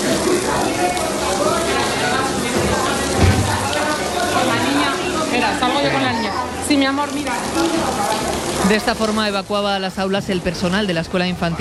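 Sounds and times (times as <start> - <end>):
water pouring and splashing down walls: 0.0 - 11.6
brief thump: 2.6 - 3.6
speech: 6.9 - 11.6.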